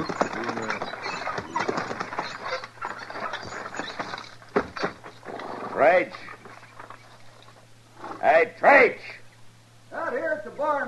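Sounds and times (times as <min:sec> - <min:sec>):
rattles: 0:00.0 - 0:07.6
team of horses pulling up, hooves clopping: 0:00.0 - 0:08.2
speech: 0:05.8 - 0:06.3, 0:08.2 - 0:09.2, 0:10.1 - 0:10.8.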